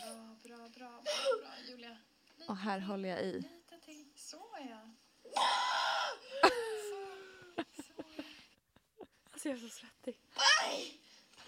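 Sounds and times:
speech: 0:00.7 - 0:03.6, 0:04.3 - 0:05.6, 0:09.4 - 0:11.0
woman screaming during childbirth labor: 0:05.3 - 0:06.4, 0:10.4 - 0:11.0.

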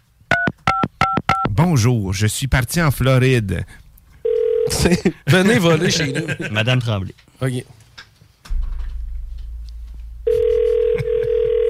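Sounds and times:
speech: 0:01.6 - 0:03.8, 0:04.7 - 0:07.8
telephone line ringing: 0:04.2 - 0:04.8, 0:10.3 - 0:11.6
laughter: 0:04.8 - 0:06.8, 0:10.8 - 0:11.5
low rumble: 0:08.5 - 0:11.3.

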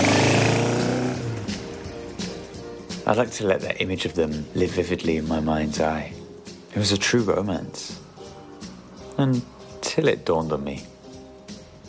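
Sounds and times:
loud motorcycle engine revving: 0:00.0 - 0:02.6
speech: 0:03.1 - 0:06.2, 0:06.8 - 0:08.0, 0:09.2 - 0:10.9.

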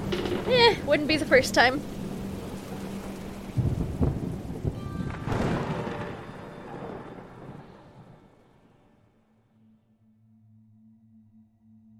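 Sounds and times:
loud rumbling thunder claps: 0:00.0 - 0:08.8
steady rain hissing in a thunderstorm: 0:00.0 - 0:08.8
speech: 0:00.5 - 0:02.0.

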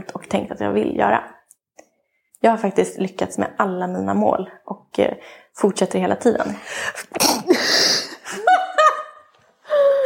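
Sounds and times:
speech: 0:00.1 - 0:01.4, 0:02.4 - 0:07.9
person laughing: 0:07.0 - 0:10.0
person sneezing: 0:07.1 - 0:08.1.

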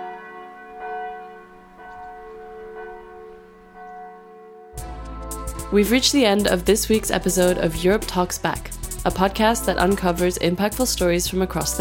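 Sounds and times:
church bell tolling noon: 0:00.0 - 0:06.5
speech: 0:05.6 - 0:11.7.

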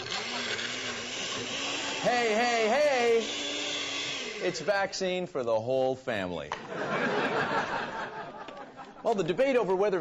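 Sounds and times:
blender running: 0:00.0 - 0:05.1
speech: 0:02.0 - 0:03.4, 0:04.4 - 0:07.8, 0:09.0 - 0:09.9
laughter: 0:06.5 - 0:09.4.

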